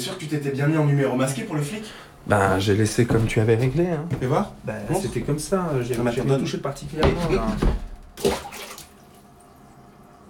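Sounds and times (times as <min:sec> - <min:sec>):
speech: 0:00.0 - 0:08.5
faint swirl of toilet water: 0:08.2 - 0:09.6.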